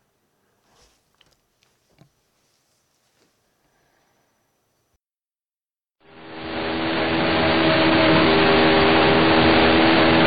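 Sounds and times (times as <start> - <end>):
1979 McLaren M28 racing car engine on board at Zandvoort circuit: 6.1 - 10.2.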